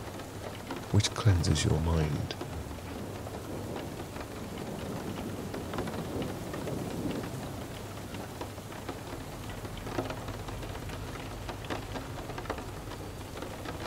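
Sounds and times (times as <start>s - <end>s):
steady rain from a storm: 0.0s - 13.8s
speech: 0.9s - 2.5s
deep rumble of rolling thunder: 2.4s - 7.8s.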